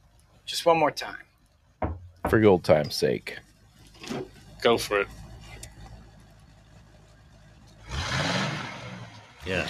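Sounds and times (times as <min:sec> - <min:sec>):
speech: 0:00.5 - 0:01.3, 0:02.3 - 0:03.5, 0:04.1 - 0:05.2, 0:09.5 - 0:09.6
car engine idling and revving in a garage: 0:04.4 - 0:09.6.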